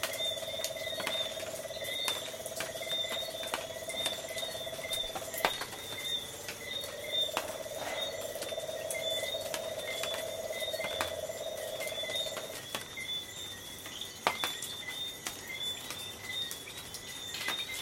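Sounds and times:
tree frog rapid pulsed trill on the coast at night: 0.0 - 13.2
high insect buzzing bands on the coast at night: 0.0 - 17.8.

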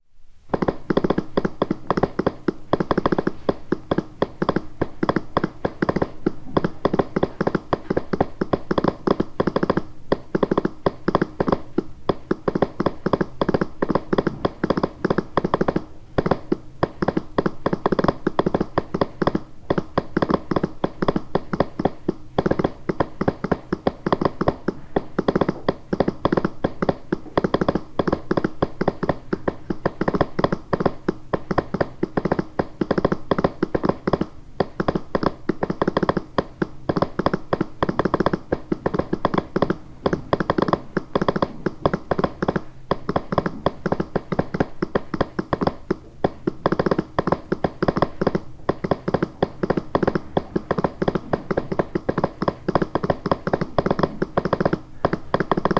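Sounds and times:
morse telegraph machine key tapping morse code: 0.5 - 55.7.

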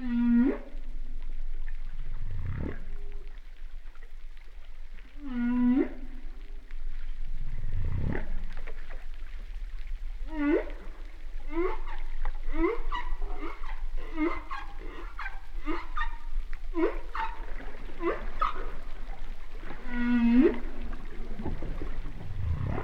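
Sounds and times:
humpback whale song: 0.0 - 22.8
steady underwater rumble: 0.0 - 22.8.

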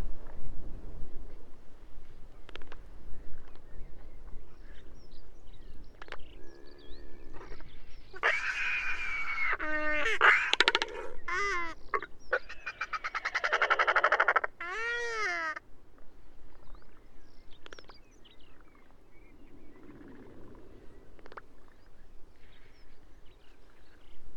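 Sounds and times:
royal albatrosses calling with braying notes, clattering pulses and harmonic wails: 6.2 - 15.6.

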